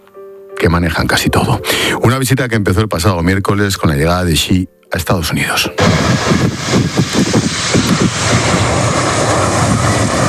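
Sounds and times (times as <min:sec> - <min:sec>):
speech: 0:00.6 - 0:09.0
Air China airliner arriving at an air base: 0:05.8 - 0:10.2.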